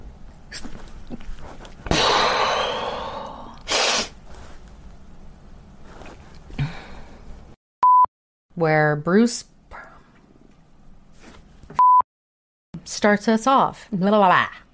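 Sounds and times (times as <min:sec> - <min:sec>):
brief sharp exhale: 0:01.9 - 0:04.2
loud human sneeze: 0:01.9 - 0:04.2
speech: 0:08.6 - 0:09.5, 0:13.0 - 0:14.6.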